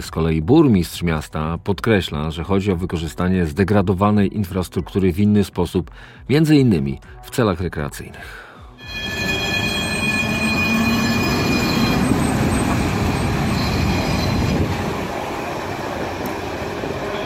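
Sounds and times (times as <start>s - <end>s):
speech: 0.0s - 9.2s
thin high-pitched tram wheel squeals: 8.8s - 15.7s, 17.0s - 17.2s
tram rolling along its rails: 8.8s - 17.2s.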